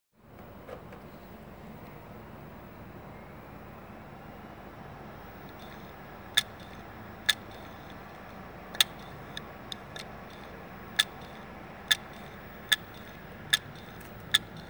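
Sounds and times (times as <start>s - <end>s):
damaged 2.5 inch 2 TB hard drive heads: 5.3s - 14.6s.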